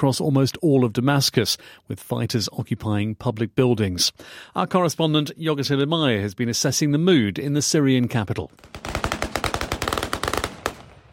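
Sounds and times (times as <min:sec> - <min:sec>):
speech: 0:00.0 - 0:09.0
celebratory automatic gunfire in a central square of Damascus: 0:08.6 - 0:11.1.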